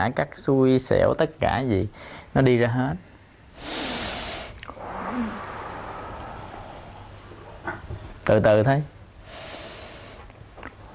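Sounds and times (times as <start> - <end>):
speech: 0.0 - 3.9, 8.3 - 9.0
deep breaths in through nose and out through mouth: 1.9 - 2.4, 3.1 - 7.5, 9.2 - 10.4.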